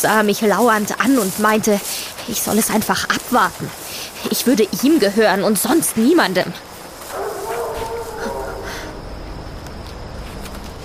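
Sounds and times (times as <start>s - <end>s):
speech: 0.0s - 6.7s
wolf howling: 7.1s - 9.1s.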